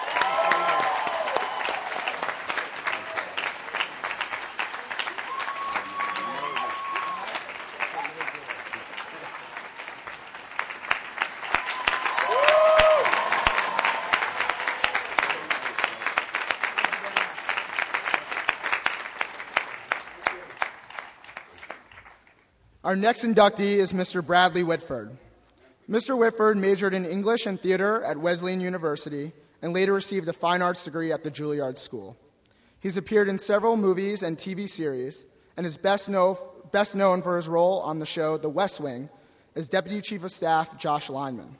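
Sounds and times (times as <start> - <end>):
crowd cheering at an induction ceremony: 0.0 - 18.6
large crowd applauding at an induction ceremony: 0.0 - 22.4
speech: 22.9 - 25.2, 25.9 - 32.2, 32.8 - 41.5.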